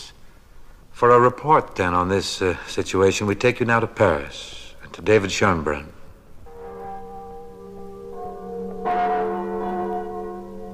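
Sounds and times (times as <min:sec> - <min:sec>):
speech: 0:01.0 - 0:06.0
large cathedral church bells tolling: 0:06.5 - 0:10.7.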